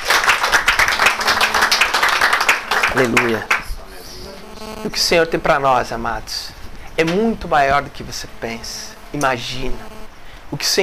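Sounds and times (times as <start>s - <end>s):
audience applauding: 0.0s - 4.6s
speech: 3.0s - 3.5s, 4.8s - 9.9s, 10.5s - 10.8s.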